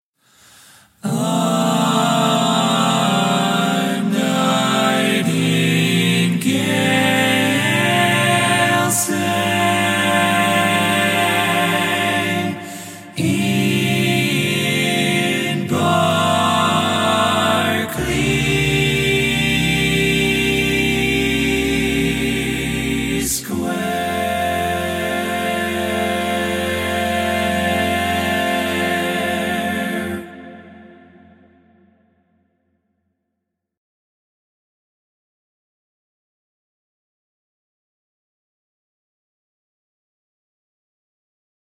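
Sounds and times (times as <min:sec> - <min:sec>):
barbershop singing with all parts: 0:01.0 - 0:31.3.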